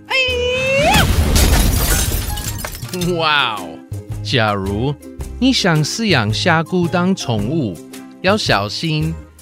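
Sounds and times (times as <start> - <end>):
breaking glass rattling: 1.0 - 3.2
glass fish tank shattering: 1.0 - 3.2
speech: 3.0 - 9.2.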